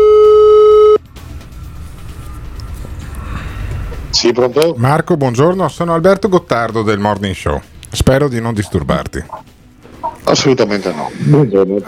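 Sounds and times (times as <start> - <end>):
outgoing phone call ringing tone: 0.0 - 1.0
speech: 4.2 - 9.5, 10.2 - 11.8.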